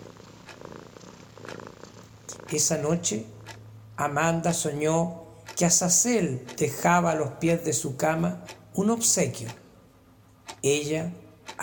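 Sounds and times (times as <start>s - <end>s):
cat purring: 0.0s - 3.6s
speech: 2.5s - 3.4s, 4.0s - 9.6s, 10.6s - 11.6s.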